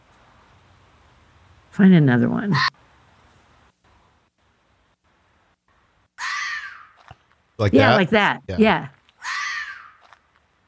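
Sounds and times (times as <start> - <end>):
speech: 1.8 - 2.8, 7.6 - 9.0
fox screaming: 6.2 - 7.1, 9.2 - 10.2.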